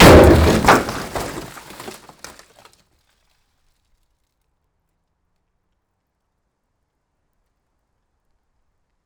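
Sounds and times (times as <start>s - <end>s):
Peugeot 106 car dropped 5 metres onto metal plates: 0.0s - 2.3s.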